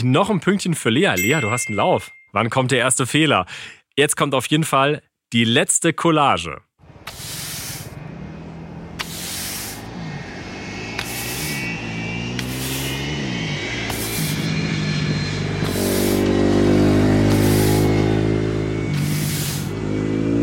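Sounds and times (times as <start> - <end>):
speech: 0.0 - 7.3
car engine revving and passing: 6.8 - 20.4
broom sweeping: 7.0 - 8.0, 9.0 - 9.9, 11.0 - 11.7, 12.4 - 13.0, 13.9 - 14.5, 15.6 - 16.4, 17.1 - 18.1, 18.9 - 19.8.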